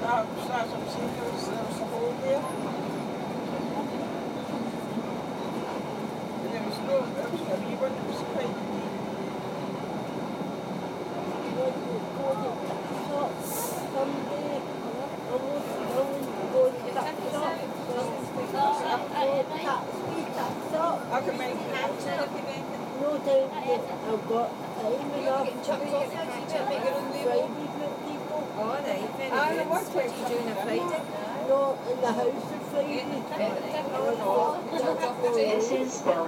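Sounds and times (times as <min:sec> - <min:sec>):
passenger train running along the track: 0:00.0 - 0:16.6
indistinct voices murmuring: 0:00.0 - 0:36.2
speech: 0:29.7 - 0:36.2.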